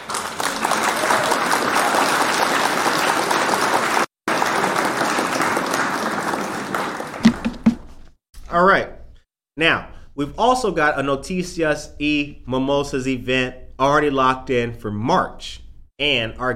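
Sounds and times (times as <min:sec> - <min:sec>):
crowd applause: 0:00.0 - 0:08.0
speech: 0:09.6 - 0:16.5.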